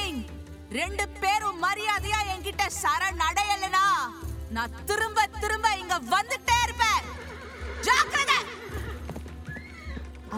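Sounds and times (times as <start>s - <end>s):
horse hooves clip-clopping: 0.4s - 10.3s
speech: 0.7s - 7.2s, 7.8s - 8.8s
horse whinnying while being mounted: 6.9s - 10.3s.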